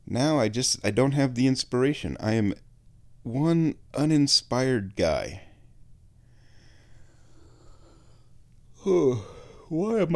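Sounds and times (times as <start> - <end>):
speech: 0.1 - 5.5, 8.8 - 10.1
short voiced yawn: 8.8 - 9.7.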